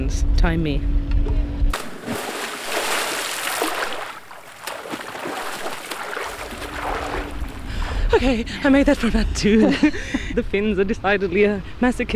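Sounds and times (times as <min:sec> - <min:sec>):
speech: 0:00.1 - 0:01.0, 0:08.2 - 0:12.1
person plunging into cold water of about 11 degrees: 0:01.7 - 0:09.1
laughter: 0:08.0 - 0:10.5.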